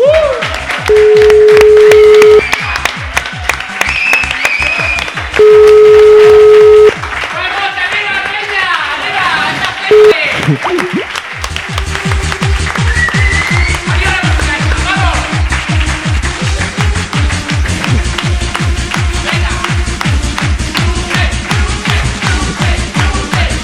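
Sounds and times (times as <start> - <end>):
crowd applauding: 0.0 - 23.6
long steady tonal horn blasts: 0.9 - 2.4.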